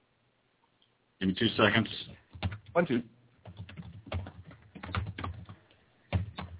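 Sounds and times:
speech: 1.2 - 2.2, 2.8 - 3.2
man typing on a computer keyboard: 1.9 - 2.8, 3.4 - 6.5.

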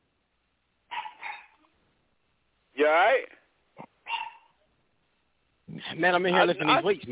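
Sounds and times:
dog barking: 0.9 - 1.7, 4.0 - 4.6
speech: 2.8 - 3.4, 6.0 - 7.0.

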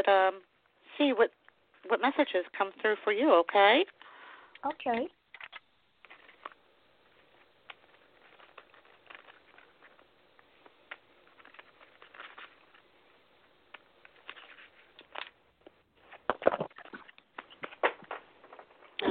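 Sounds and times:
speech: 0.0 - 4.0, 4.6 - 5.2
shuffling a deck of cards: 5.3 - 18.2.

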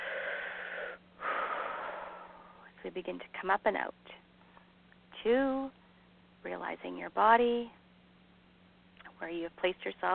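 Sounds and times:
deep cleansing breath in during a guided relaxation: 0.0 - 2.6
speech: 2.8 - 4.2, 5.2 - 5.8, 6.4 - 7.8, 9.2 - 10.1.

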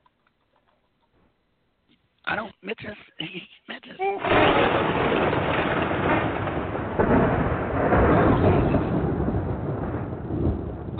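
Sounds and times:
speech: 2.3 - 5.1
rain or storm noise: 4.0 - 10.9
thunder rumbling during a storm: 4.2 - 10.9.

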